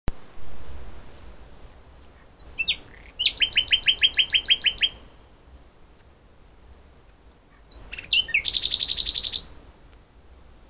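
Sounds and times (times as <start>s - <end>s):
common nightingale Luscinia megarhynchos singing: 1.8s - 6.2s, 7.0s - 9.7s.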